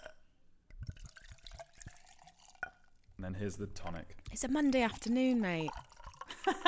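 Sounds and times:
gin poured into a glass over ice: 0:00.7 - 0:06.6
ice clinking in a glass: 0:00.8 - 0:03.1, 0:03.8 - 0:06.6
speech: 0:03.2 - 0:06.6.

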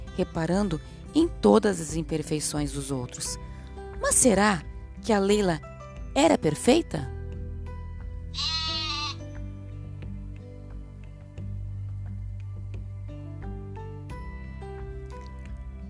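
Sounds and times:
soft music: 0:00.0 - 0:15.8
speech: 0:00.2 - 0:07.2, 0:08.4 - 0:08.6
sheep bleating: 0:08.3 - 0:09.2.

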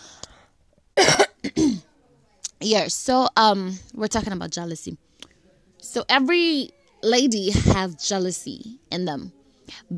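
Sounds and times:
harsh dry coughing: 0:01.0 - 0:01.9
speech: 0:02.6 - 0:05.1, 0:05.8 - 0:09.9.

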